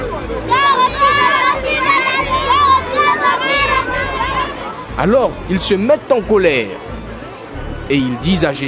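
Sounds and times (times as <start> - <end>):
group of children shouting and calling out in a temple: 0.3 - 4.9
speech: 5.0 - 6.9, 7.9 - 8.6.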